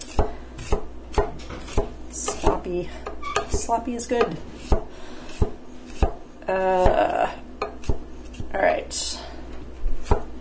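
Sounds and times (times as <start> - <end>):
knife chopping garlic clove on a cutting board: 0.0 - 2.6, 3.4 - 6.2
speech: 2.6 - 4.8, 6.5 - 7.4, 8.6 - 9.2.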